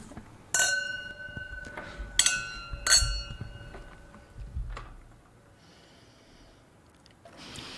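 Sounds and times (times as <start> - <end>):
wine glasses clinking in a toast at a wine tasting: 0.5 - 4.2
breathing: 1.7 - 2.2, 5.5 - 7.7.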